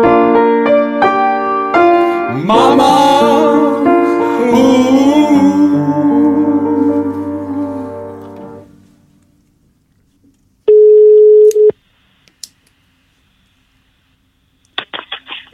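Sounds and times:
music: 0.0 - 9.0
short electronic dialing beeps: 10.7 - 11.7
telephone ringing tone: 10.7 - 11.7.

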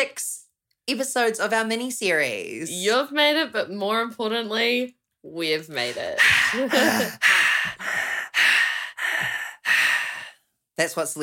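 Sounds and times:
speech: 0.0 - 7.9, 10.8 - 11.2
loud heavy breathing: 5.9 - 10.5
slight voiced groan: 6.1 - 7.5.

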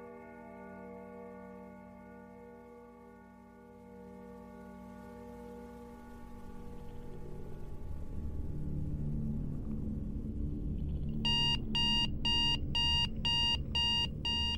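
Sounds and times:
low continuous rumble: 7.0 - 14.5
mobile phone alarm short bright harmonic beeps: 11.3 - 14.5.

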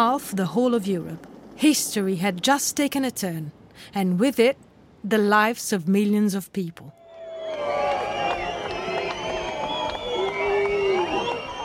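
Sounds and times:
speech: 0.0 - 7.7
large outdoor crowd roaring and cheering: 7.0 - 11.6
shouts from a crowd: 7.0 - 11.6
whistles from a crowd: 7.0 - 11.6.

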